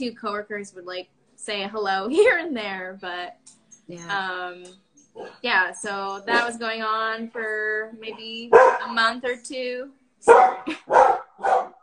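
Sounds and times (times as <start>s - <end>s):
speech: 0.0s - 11.6s
dog barking: 8.5s - 9.0s, 10.3s - 11.8s.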